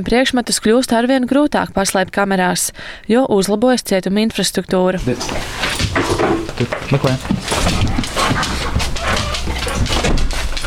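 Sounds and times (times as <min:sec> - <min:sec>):
speech: 0:00.0 - 0:08.6
busy clattering and shuffling movement at a prison: 0:05.0 - 0:10.6
Dutch shepherd detection dog whimpering and barking: 0:07.6 - 0:10.2.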